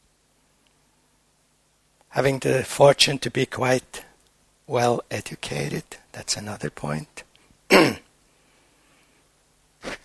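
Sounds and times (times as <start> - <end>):
speech: 2.2 - 4.1, 4.7 - 8.0
person coughing: 7.7 - 8.1.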